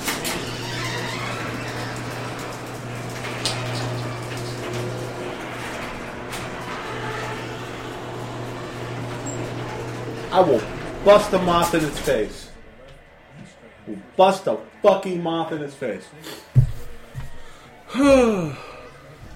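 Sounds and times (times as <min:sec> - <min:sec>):
motorized garage door opening: 0:00.0 - 0:13.4
speech: 0:10.4 - 0:12.5, 0:14.2 - 0:16.4, 0:17.9 - 0:18.7.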